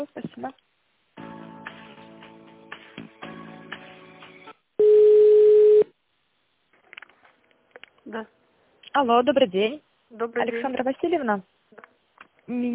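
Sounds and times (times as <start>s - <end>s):
speech: 0.0s - 0.6s, 8.1s - 8.4s, 9.0s - 11.5s, 12.5s - 12.7s
steady telephone line tone: 4.8s - 5.9s.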